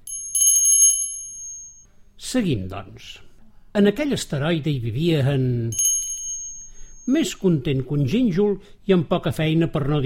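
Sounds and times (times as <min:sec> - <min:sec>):
small bell ringing: 0:00.0 - 0:01.9, 0:05.7 - 0:07.4
speech: 0:02.3 - 0:05.9, 0:07.1 - 0:10.0.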